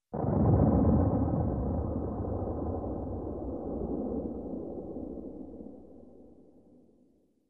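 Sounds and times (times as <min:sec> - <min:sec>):
bomb explosion shockwave: 0:00.1 - 0:05.6.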